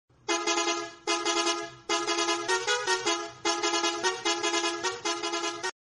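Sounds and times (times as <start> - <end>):
Volvo bus horn: 0.2 - 5.8.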